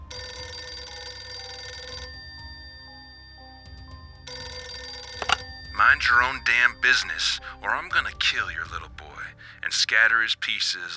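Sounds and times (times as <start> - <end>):
old-style telephone bell ringing: 0.0 - 8.3
speech: 5.8 - 9.0, 9.6 - 10.9.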